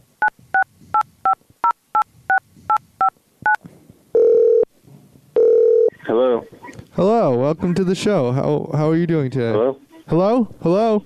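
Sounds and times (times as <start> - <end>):
longer steady lower telephone tone: 0.2 - 4.7, 5.4 - 6.4
speech: 7.0 - 11.0.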